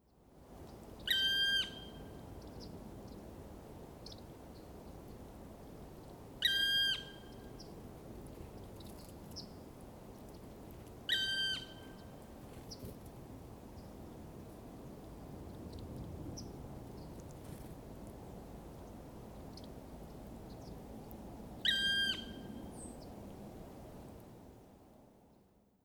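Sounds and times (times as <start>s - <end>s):
black woodpecker call: 1.1s - 2.0s, 6.4s - 7.3s, 11.1s - 12.0s, 21.6s - 22.5s.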